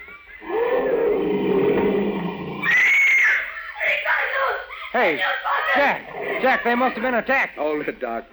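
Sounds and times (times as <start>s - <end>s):
laughter: 0.0s - 0.9s, 3.1s - 8.0s
lion roaring in a jungle: 0.4s - 3.0s
speech: 5.0s - 8.3s.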